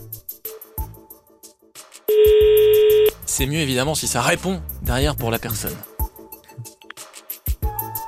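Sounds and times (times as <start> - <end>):
telephone ringing tones on an outgoing call: 2.1 - 3.2
speech: 3.4 - 5.9.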